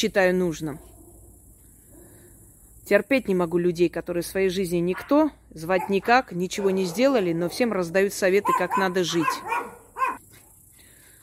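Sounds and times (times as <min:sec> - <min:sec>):
speech: 0:00.0 - 0:00.9, 0:02.9 - 0:09.8
dog barking: 0:05.8 - 0:07.7, 0:08.4 - 0:10.2
faint dog yip: 0:08.5 - 0:10.2.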